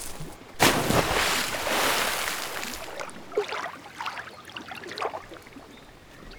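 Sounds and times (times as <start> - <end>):
splash as something plunges into water: 0.0 - 4.2
water sloshing and bubbling with smaller splashes: 0.0 - 6.0.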